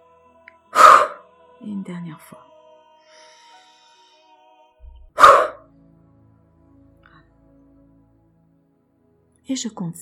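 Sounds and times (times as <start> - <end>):
forceful exhale during a breathing and relaxation exercise: 0.8 - 1.2, 5.2 - 5.6
speech: 1.6 - 2.5, 9.5 - 10.0.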